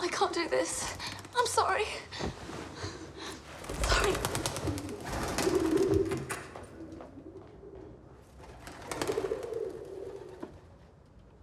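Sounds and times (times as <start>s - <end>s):
speech: 0.1s - 2.6s
soft rustling and fluttering: 2.3s - 11.2s
doves cooing: 3.6s - 10.8s.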